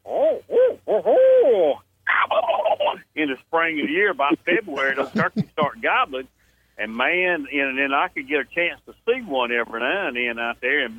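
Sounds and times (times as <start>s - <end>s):
barred owl hooting in the early morning: 0.0s - 2.6s
speech: 3.2s - 10.9s
laughter: 3.7s - 5.8s.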